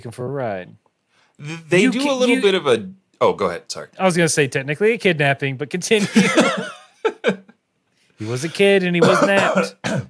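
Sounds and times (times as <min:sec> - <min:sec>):
speech: 0:00.0 - 0:00.8, 0:01.4 - 0:06.7, 0:08.2 - 0:10.0
laughter: 0:06.0 - 0:07.5, 0:08.2 - 0:09.6
person coughing: 0:06.2 - 0:07.4, 0:08.2 - 0:10.0.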